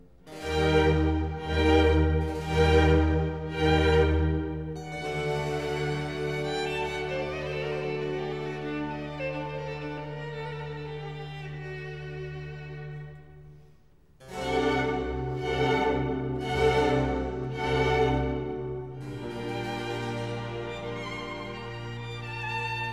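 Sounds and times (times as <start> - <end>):
four violins and cello playing a concerto in F major: 0.3 - 13.5, 14.2 - 22.9.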